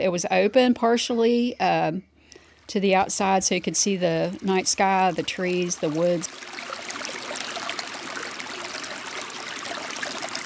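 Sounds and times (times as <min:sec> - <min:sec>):
speech: 0:00.0 - 0:02.1, 0:02.7 - 0:06.6
river water rushing and babbling: 0:02.4 - 0:10.4.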